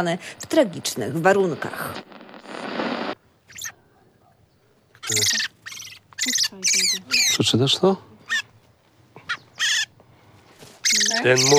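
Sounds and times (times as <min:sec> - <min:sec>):
speech: 0:00.0 - 0:02.7, 0:05.1 - 0:05.5, 0:06.2 - 0:08.2, 0:11.2 - 0:11.5
harsh rushing noise: 0:00.0 - 0:03.2
song thrushes, redpolls, blackbirds and redwings chirping: 0:00.0 - 0:11.5.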